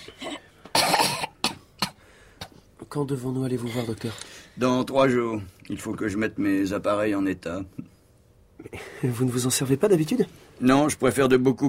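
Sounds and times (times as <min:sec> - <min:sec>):
patient coughing in harsh chesty bursts at a doctor's visit: 0:00.0 - 0:02.0
speech: 0:02.9 - 0:07.8, 0:09.0 - 0:11.6.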